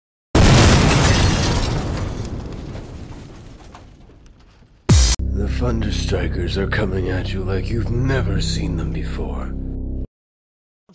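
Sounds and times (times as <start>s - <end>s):
loud explosion with broad roaring blast: 0.4s - 5.2s
speech: 5.6s - 9.7s.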